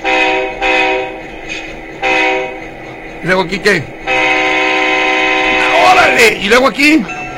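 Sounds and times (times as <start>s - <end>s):
digital model train whistle operated from a mobile phone: 0.0s - 1.2s, 4.1s - 6.1s
speech: 3.2s - 4.0s, 6.1s - 7.2s.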